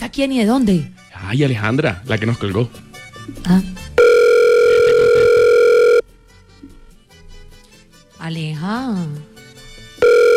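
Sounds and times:
speech: 0.1s - 3.8s, 8.3s - 9.3s
telephone call reaching voicemail electronic tone: 4.0s - 6.0s, 10.0s - 10.3s.

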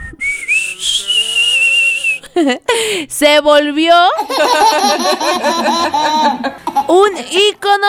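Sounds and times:
person whistling a Mexican ranchera tune: 0.0s - 2.3s
laughter: 2.2s - 2.7s, 4.2s - 6.9s
speech: 2.4s - 7.8s.

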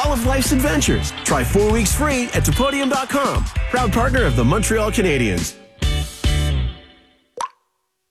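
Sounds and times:
speech: 0.1s - 5.6s
water drip from a leaking plumbing pipe: 7.4s - 7.7s.

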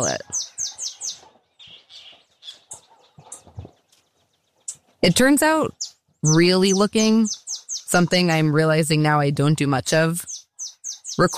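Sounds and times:
speech: 0.0s - 0.4s, 5.0s - 10.3s, 11.2s - 11.3s
several birds chattering and chirping: 0.0s - 11.3s
lower bird clucks: 0.2s - 4.0s.

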